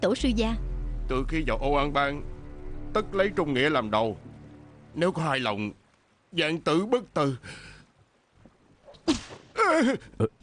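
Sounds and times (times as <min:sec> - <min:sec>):
speech: 0:00.0 - 0:02.3, 0:02.9 - 0:04.2, 0:05.0 - 0:07.7, 0:09.1 - 0:10.4
whip cracks striking a person: 0:09.1 - 0:09.5.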